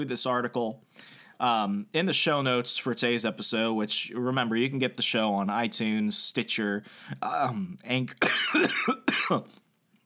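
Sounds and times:
speech: 0:00.0 - 0:09.6
person coughing with harsh throaty rasps: 0:08.2 - 0:09.6.

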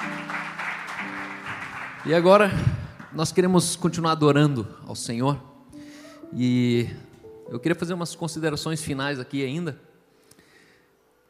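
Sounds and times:
audience applause: 0:00.0 - 0:03.6
speech: 0:02.0 - 0:05.5, 0:06.3 - 0:09.9.

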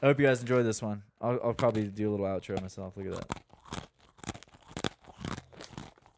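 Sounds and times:
speech: 0:00.0 - 0:03.4
dry ginger snap cookie crunching: 0:01.5 - 0:06.1.

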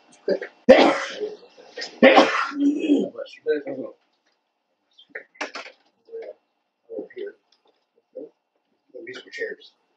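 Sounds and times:
speech: 0:00.2 - 0:00.8
person sneezing during a church service: 0:00.7 - 0:03.1.

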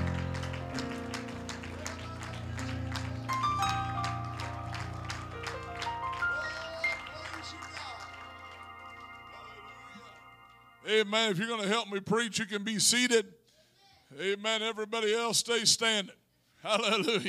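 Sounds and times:
crowd clapping in praise during a preaching service: 0:00.0 - 0:10.9
sustained organ or keyboard chords: 0:00.0 - 0:11.8
speech: 0:10.9 - 0:13.4, 0:14.2 - 0:17.2.

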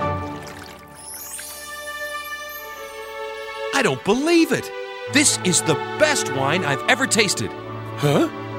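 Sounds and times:
water poured from jars into a container for wedding guests: 0:00.0 - 0:02.4
speech: 0:03.8 - 0:08.4.

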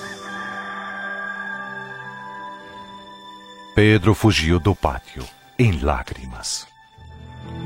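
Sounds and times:
rooster crowing: 0:00.0 - 0:03.2
speech: 0:03.8 - 0:06.7.

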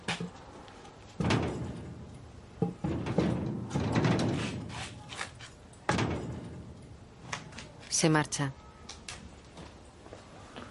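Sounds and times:
solid knocks of a wooden plank wedged against a door: 0:01.2 - 0:04.8
heavy wooden plank scraping against a door while barring it shut at night: 0:03.0 - 0:05.5
speech: 0:08.0 - 0:08.6.

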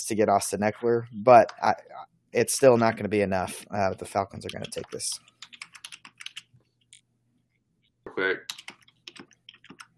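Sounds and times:
speech: 0:00.0 - 0:05.3, 0:08.2 - 0:08.5
typing on a computer keyboard: 0:04.4 - 0:06.5, 0:08.5 - 0:09.9.

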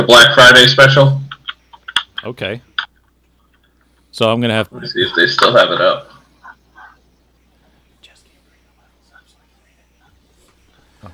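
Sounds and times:
speech: 0:00.0 - 0:01.2, 0:02.2 - 0:02.7, 0:04.2 - 0:06.2
people whispering off-mic: 0:06.1 - 0:11.1.

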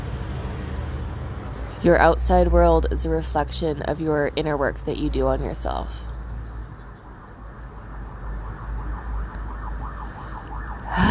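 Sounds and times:
steady low rumble of traffic: 0:00.0 - 0:11.0
speech: 0:01.8 - 0:06.1
emergency vehicle siren wailing outside: 0:06.9 - 0:11.0.

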